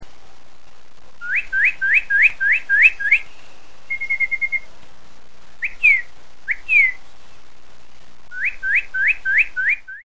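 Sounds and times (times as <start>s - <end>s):
bird chirps: 1.2s - 4.7s, 5.6s - 7.0s, 8.3s - 10.0s.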